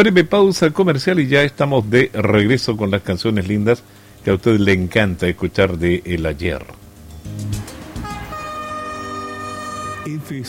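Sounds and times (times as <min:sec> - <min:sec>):
speech: 0:00.0 - 0:07.6, 0:10.1 - 0:10.4
train horn sustained tone: 0:07.6 - 0:10.4.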